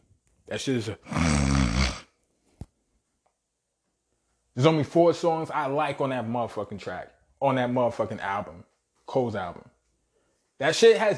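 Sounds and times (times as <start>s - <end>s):
speech: 0.5s - 1.4s, 4.6s - 9.7s, 10.6s - 11.1s
person imitating snoring: 1.0s - 2.1s.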